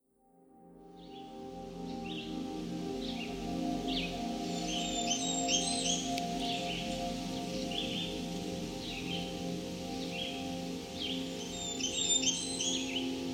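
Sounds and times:
male Blackburnian warbler singing: 1.0s - 13.3s.

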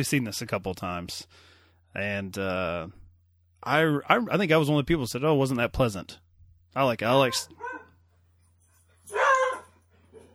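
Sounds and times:
speech: 0.0s - 3.0s, 3.6s - 6.2s, 6.8s - 7.7s
pet dog barking: 7.2s - 8.0s, 9.1s - 10.3s.

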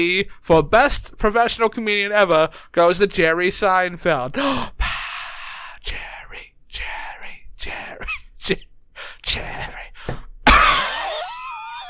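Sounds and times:
speech: 0.0s - 4.8s, 5.8s - 7.0s, 7.6s - 10.2s
person coughing: 10.5s - 11.3s.

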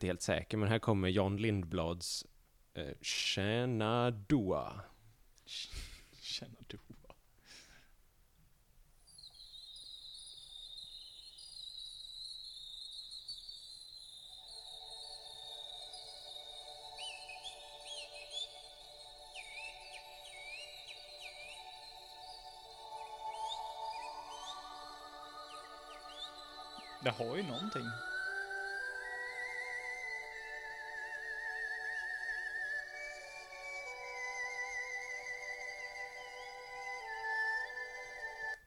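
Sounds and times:
speech: 0.0s - 4.9s, 5.5s - 7.0s, 27.0s - 28.1s
man whistling chirping, trilling birdsong imitations: 9.0s - 38.6s
steady sustained drone in an ambient-style music track: 14.4s - 38.6s.

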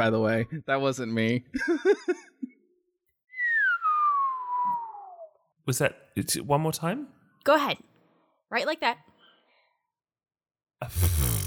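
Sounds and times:
speech: 0.0s - 2.4s, 5.7s - 7.9s, 8.5s - 9.1s, 10.8s - 11.2s
single long whistle gliding downward in pitch: 3.3s - 5.5s.

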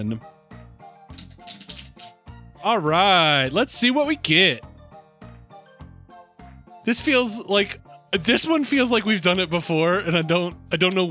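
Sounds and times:
speech: 0.0s - 0.4s, 2.6s - 4.7s, 6.8s - 11.0s
deck of cards being shuffled: 1.1s - 2.2s.

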